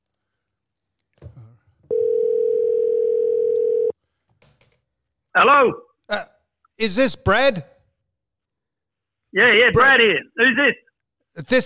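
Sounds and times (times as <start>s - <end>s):
telephone ringing tone on a call: 1.9s - 4.0s
speech: 5.4s - 7.7s, 9.3s - 10.8s, 11.4s - 11.6s.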